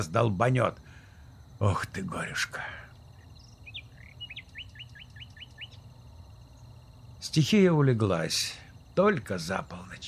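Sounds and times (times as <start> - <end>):
speech: 0.0 - 0.9, 1.6 - 2.8, 7.3 - 10.0
nightingale singing: 0.0 - 10.0.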